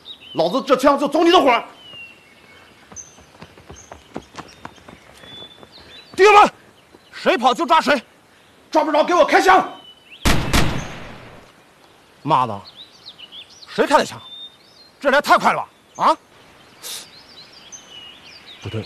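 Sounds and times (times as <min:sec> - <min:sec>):
birds chirping: 0:00.0 - 0:18.8
distant gunshots: 0:10.2 - 0:11.4.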